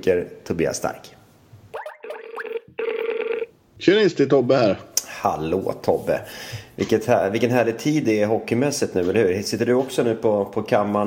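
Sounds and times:
speech: 0.0 - 1.1, 3.8 - 11.0
dialing chirps: 1.8 - 3.5
telephone ringback tone as a call is placed: 2.0 - 3.5.

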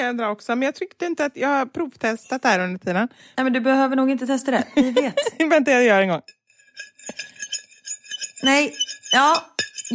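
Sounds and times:
speech: 0.0 - 7.3, 8.4 - 9.9
laughter: 4.8 - 5.5
fork scraping across a plate: 6.3 - 9.9.

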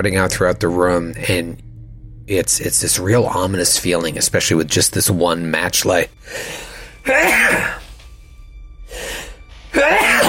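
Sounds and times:
speech: 0.0 - 1.7, 2.3 - 7.8, 9.7 - 10.2
breathy intake: 6.2 - 8.0, 8.9 - 10.2
loud sneezes: 9.7 - 10.2.

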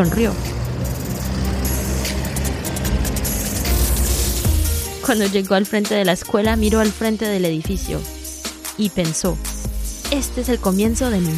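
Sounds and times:
speech: 0.0 - 0.5, 5.1 - 8.2, 8.8 - 9.5, 10.1 - 11.3
bus engine drone heard from inside: 0.0 - 5.3
bus road noise heard from inside: 0.0 - 5.6.

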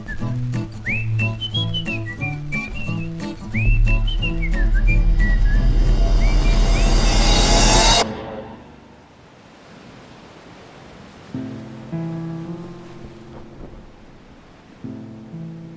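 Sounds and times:
ocean waves washing while sailing at sunset: 0.0 - 15.7
sustained low musical tones: 3.0 - 9.0.

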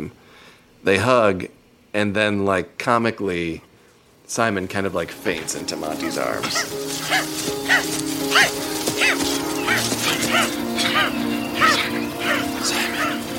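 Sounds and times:
speech: 0.8 - 3.7, 4.3 - 7.5
man imitating a dog with whining yelps and short barks: 6.5 - 13.3.

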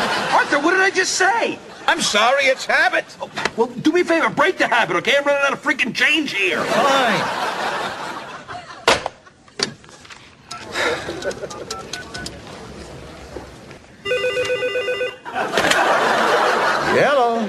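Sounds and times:
laughter: 0.0 - 3.4, 6.4 - 9.6, 10.6 - 12.4, 15.2 - 17.4
speech: 0.6 - 7.7, 11.0 - 12.0, 17.0 - 17.4
telephone ringing in a short electronic trill: 14.0 - 15.4.

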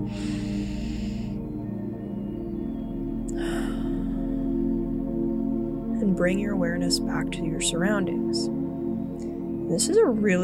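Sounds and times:
deep breaths taken while ending a mindfulness practice: 0.0 - 1.6, 3.3 - 4.6
low tonal drone: 0.0 - 10.4
speech: 6.2 - 8.6, 9.7 - 10.4.

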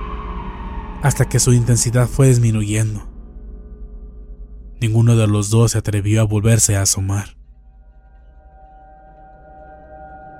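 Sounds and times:
ambulance siren wailing: 0.0 - 2.9
low rumble: 0.0 - 6.6
speech: 1.0 - 3.1, 4.8 - 7.4.

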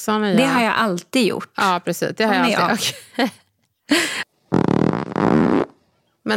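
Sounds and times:
speech: 0.0 - 4.2
loud fart at the dinner table: 4.5 - 5.9.

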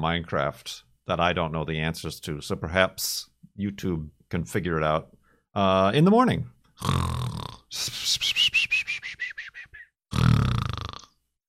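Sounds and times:
speech: 0.0 - 8.4
long croaky burp: 6.8 - 7.7, 10.1 - 11.2.

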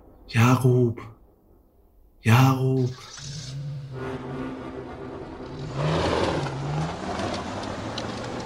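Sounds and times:
speech: 0.3 - 1.2, 2.2 - 4.4
road noise: 2.8 - 8.4
car engine revving and accelerating: 3.0 - 8.4.

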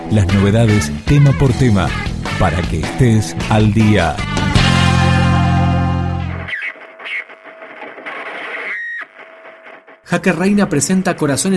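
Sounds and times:
rock song, opening track of a new album: 0.0 - 7.4
sparser effects-heavy guitar noises: 0.0 - 10.2
speech: 0.1 - 4.3, 10.1 - 11.5
loud heavily distorted guitar chord: 4.2 - 6.5.

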